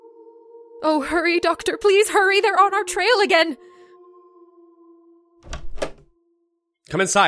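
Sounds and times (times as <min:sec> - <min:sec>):
speech: 0:00.8 - 0:03.8, 0:06.9 - 0:07.2
door being unlocked and pulled open: 0:05.4 - 0:06.1.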